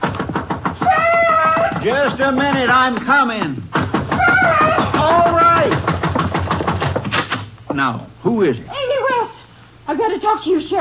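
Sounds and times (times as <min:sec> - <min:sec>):
urgent knocking on a house door: 0:00.0 - 0:07.4
speech: 0:01.8 - 0:03.8, 0:07.8 - 0:09.0, 0:09.9 - 0:10.7.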